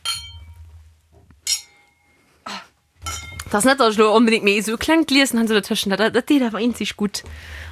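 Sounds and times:
wine glasses clinking in a toast: 0:00.0 - 0:00.6, 0:01.4 - 0:02.1, 0:03.0 - 0:03.5
speech: 0:03.5 - 0:07.7.

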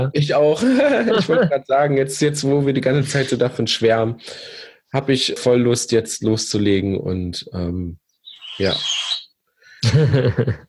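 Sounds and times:
speech: 0:00.0 - 0:08.0, 0:08.6 - 0:09.1, 0:09.8 - 0:10.6
laughter: 0:00.4 - 0:01.7, 0:09.8 - 0:10.6
birds chirping: 0:08.0 - 0:09.4.

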